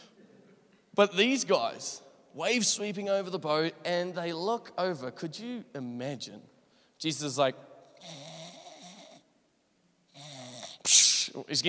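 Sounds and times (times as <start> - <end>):
speech: 1.0 - 8.3, 10.9 - 11.6
person imitating snoring: 8.0 - 9.2, 10.1 - 10.9.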